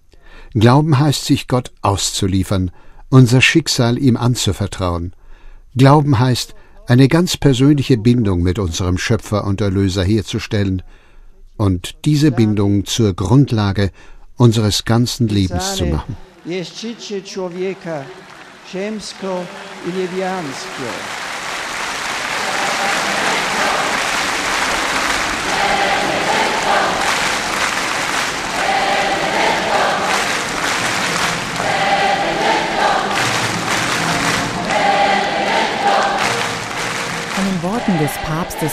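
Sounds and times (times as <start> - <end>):
speech: 0.5 - 11.0, 11.6 - 21.2, 38.0 - 38.7
large crowd in Krakow applauding: 15.8 - 38.7.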